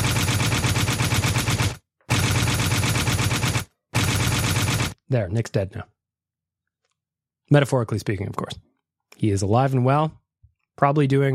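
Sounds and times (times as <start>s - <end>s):
automatic gunfire sound effect of a gun clip being emptied: 0.0s - 5.0s
speech: 5.1s - 6.0s, 7.5s - 10.2s, 10.8s - 11.3s.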